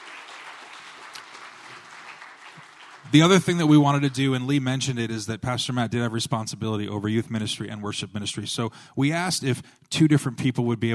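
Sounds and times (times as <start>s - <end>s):
audience applause: 0.0s - 4.2s
speech: 3.1s - 10.9s.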